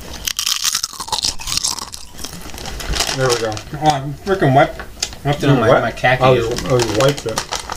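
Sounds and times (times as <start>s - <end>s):
crunching and chewing of a wrap snack: 0.0s - 4.0s, 6.4s - 7.7s
speech: 3.2s - 7.5s.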